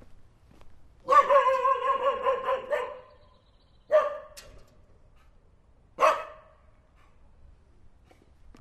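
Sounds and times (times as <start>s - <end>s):
dog barking: 1.1s - 3.2s, 3.9s - 4.4s, 6.0s - 6.6s.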